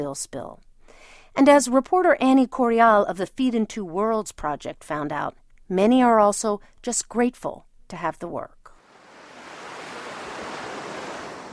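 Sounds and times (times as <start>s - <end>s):
speech: 0.0s - 0.7s, 1.3s - 8.6s
ocean surf rolling onto a white sand beach in Port Fourchon Louisiana: 8.8s - 11.5s.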